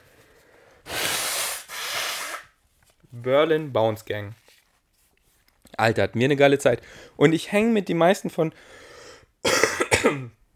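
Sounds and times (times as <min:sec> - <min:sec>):
person blowing nose: 0:00.8 - 0:02.6
speech: 0:03.1 - 0:04.4, 0:05.8 - 0:08.8, 0:10.0 - 0:10.4.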